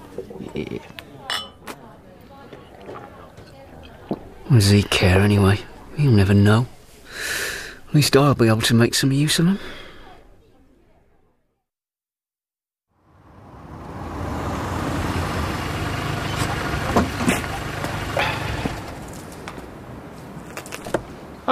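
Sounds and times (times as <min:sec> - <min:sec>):
speech: 0:00.2 - 0:01.2, 0:04.5 - 0:09.8
car engine idling: 0:13.0 - 0:20.0.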